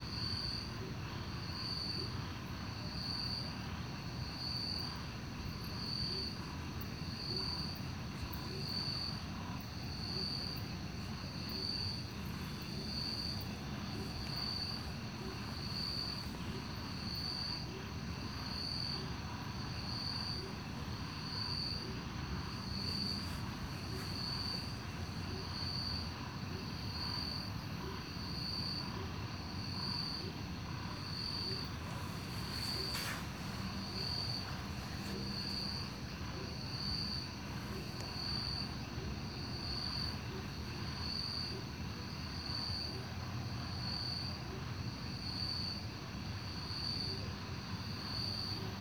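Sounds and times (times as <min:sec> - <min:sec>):
chorus of crickets at night in Beija Flor park in the Cerrado: 0:00.0 - 0:48.7
footsteps on grass: 0:11.0 - 0:17.8, 0:20.2 - 0:25.7, 0:31.2 - 0:36.1.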